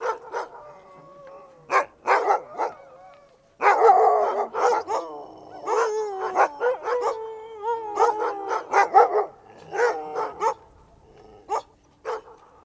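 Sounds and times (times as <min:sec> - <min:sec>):
dog barking: 0:00.0 - 0:00.6, 0:01.7 - 0:02.8, 0:03.6 - 0:05.1, 0:08.0 - 0:10.6, 0:11.5 - 0:12.5
dog howling: 0:00.3 - 0:11.7.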